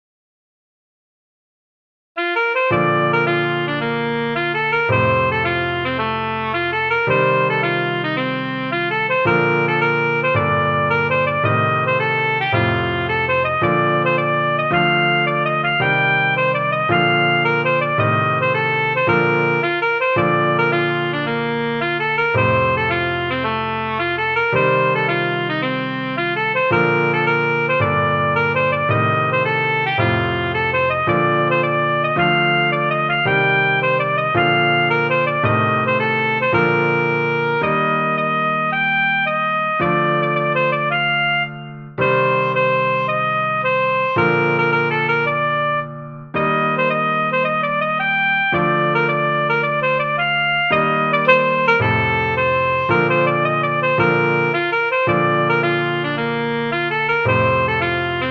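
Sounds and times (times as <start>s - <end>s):
clarinet: 2.2s - 58.2s.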